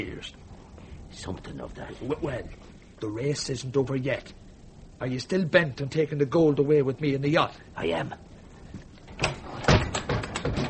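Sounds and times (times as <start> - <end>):
speech: 0.0 - 0.5, 1.1 - 4.4, 5.0 - 8.3
door being shut and fastened: 9.2 - 10.6.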